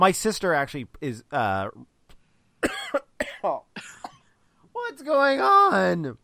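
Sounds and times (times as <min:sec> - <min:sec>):
speech: 0:00.0 - 0:01.9, 0:02.6 - 0:03.9, 0:04.9 - 0:06.2
person coughing from wine down the wrong pipe: 0:02.6 - 0:04.3.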